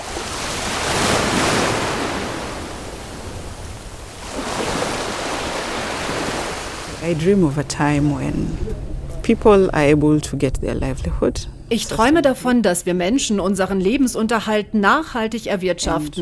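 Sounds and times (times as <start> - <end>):
sea surf: 0.0 - 9.0
wind roaring at sea: 0.0 - 12.3
speech: 7.1 - 16.1.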